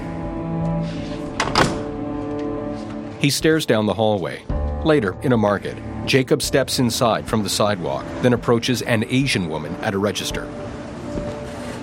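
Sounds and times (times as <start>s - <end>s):
humming musical drone: 0.0s - 11.8s
door pushed shut from a hallway: 1.4s - 1.9s
speech: 3.2s - 10.7s.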